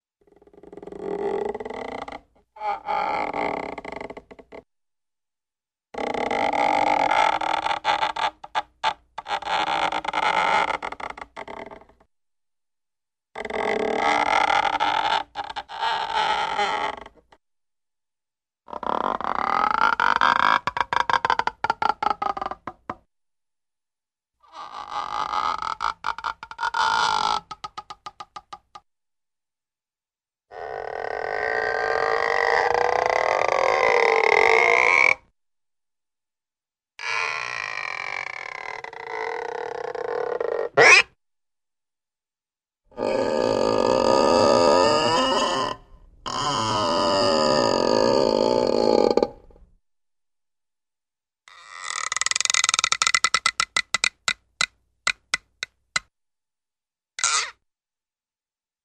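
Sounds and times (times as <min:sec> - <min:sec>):
long creaky stretching of a slingshot: 0:00.3 - 0:04.7, 0:06.0 - 0:12.0, 0:13.4 - 0:17.4, 0:18.7 - 0:22.9, 0:24.6 - 0:28.8, 0:30.5 - 0:35.3, 0:37.0 - 0:41.1, 0:43.0 - 0:49.6, 0:51.6 - 0:56.1, 0:57.2 - 0:57.6.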